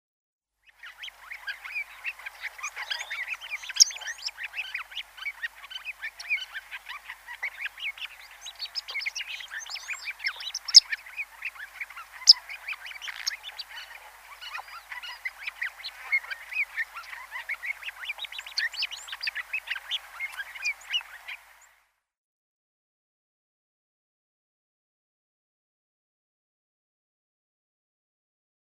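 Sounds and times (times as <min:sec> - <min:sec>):
African Silverbill singing: 0:00.6 - 0:21.7.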